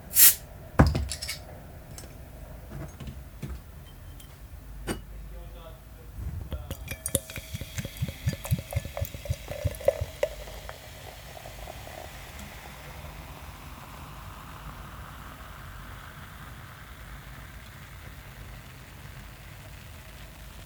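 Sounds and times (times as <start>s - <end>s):
Belgian golden strong ale glugging as poured into a glass: 0.2s - 0.4s, 6.5s - 19.4s
bottle cap popping off a Belgian golden strong ale bottle: 0.2s - 2.1s, 6.5s - 12.6s
glass clinking: 0.8s - 2.2s, 3.8s - 5.1s, 6.5s - 13.4s.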